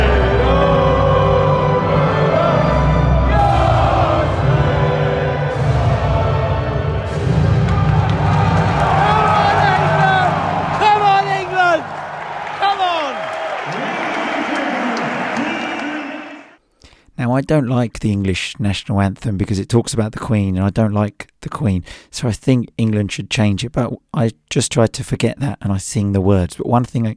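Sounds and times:
huge stadium crowd roaring after national anthems: 0.0 - 16.6
people shouting: 7.6 - 16.6
speech: 17.4 - 27.1.

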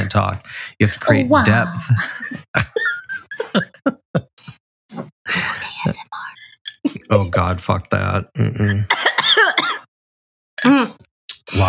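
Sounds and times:
laughter: 0.0 - 4.6, 6.8 - 9.2
speech: 0.2 - 2.9, 6.8 - 9.1, 10.6 - 11.6
person coughing into microphone: 8.6 - 9.8.

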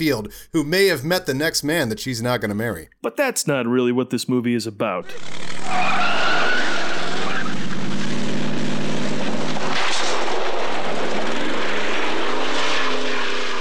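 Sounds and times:
speech: 0.0 - 6.5
1970 Camaro engine roar: 5.1 - 13.6
car tires squealing doing a donut: 5.6 - 8.1.

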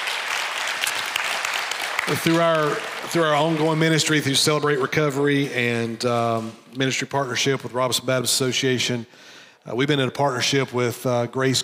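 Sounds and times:
audience applauding: 0.0 - 4.4
speech: 2.1 - 11.6.

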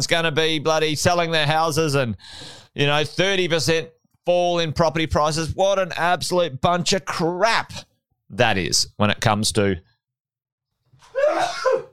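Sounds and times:
speech: 0.0 - 9.9
person sneezing: 11.2 - 11.9.

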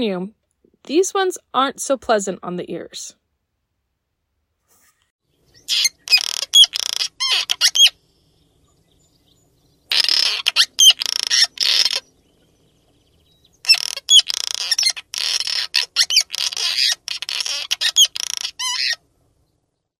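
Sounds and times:
speech: 0.0 - 3.2
cliff swallow singing with harsh grating squeaks and guttural creaks: 5.6 - 8.0, 9.9 - 12.5, 13.6 - 19.0.

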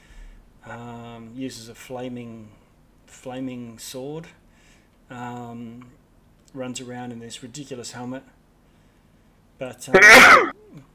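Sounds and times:
speech: 0.6 - 4.4, 5.1 - 8.4, 9.6 - 10.9
faint murmur: 10.0 - 10.5
single loud sneeze: 10.0 - 10.5.

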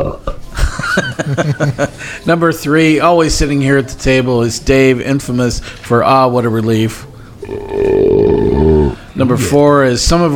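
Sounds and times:
laughter: 0.0 - 2.2
speech: 1.2 - 7.8, 9.2 - 10.3
belch: 7.4 - 9.6.

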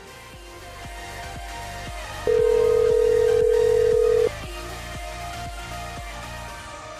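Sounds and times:
electronic ring tone of a call-in hotline phone: 2.3 - 4.4
rhythmic beat-driven music: 2.3 - 4.6.

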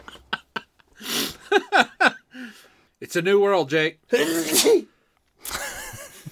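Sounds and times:
speech: 3.0 - 4.9
person sneezing: 4.1 - 5.0.

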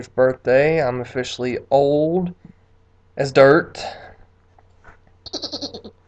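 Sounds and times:
speech: 0.0 - 2.4, 3.2 - 4.1, 5.3 - 6.0
quiet hum: 0.0 - 6.0
goat bleating: 5.3 - 5.9.

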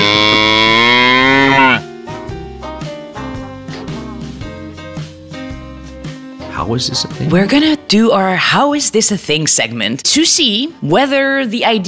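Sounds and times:
cow mooing: 0.0 - 1.9
short bouncy burst of music: 0.1 - 8.6
speech: 6.7 - 11.8.

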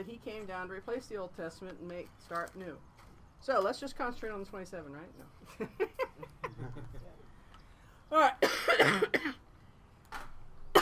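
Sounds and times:
speech: 0.0 - 7.0, 8.1 - 9.3
laughter: 5.4 - 7.2
person coughing harshly: 8.4 - 9.4.

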